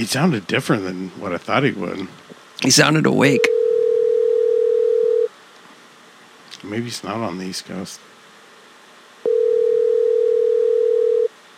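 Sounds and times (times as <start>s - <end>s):
speech: 0.0s - 3.6s, 6.6s - 8.1s
telephone ringback tone while caller waits for an answer: 3.4s - 5.3s, 9.3s - 11.3s.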